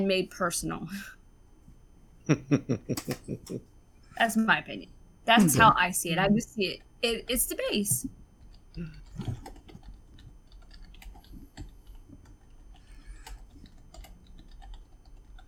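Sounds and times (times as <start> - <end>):
speech: 0.0 - 1.2, 2.3 - 8.2, 8.8 - 9.5
low hum: 0.0 - 15.4
laughter: 2.3 - 3.6, 5.3 - 5.8
computer keyboard clicks: 2.9 - 3.6, 8.4 - 15.4.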